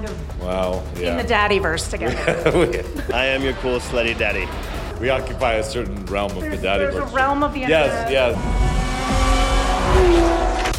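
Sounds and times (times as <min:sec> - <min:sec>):
speech: 0:00.4 - 0:09.3
laughter: 0:02.0 - 0:05.9
race car engines roaring and revving on a track: 0:02.2 - 0:10.7.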